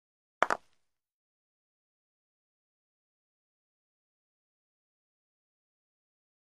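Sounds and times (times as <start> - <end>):
croquet ball hit: 0.4 - 0.6.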